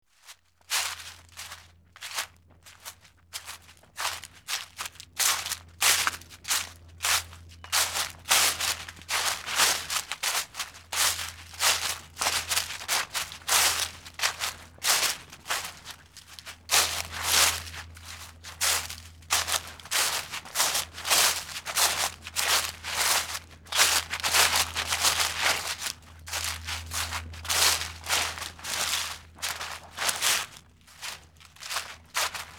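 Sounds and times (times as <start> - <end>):
footsteps walking on leaves: 0.1 - 32.5.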